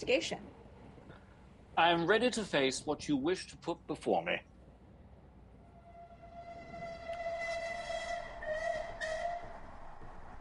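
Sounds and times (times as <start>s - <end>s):
speech: 0.0s - 0.6s, 1.8s - 4.5s
train rumbling along the rails: 4.7s - 10.3s
high-pitched squeal or whistle tone: 5.7s - 10.3s.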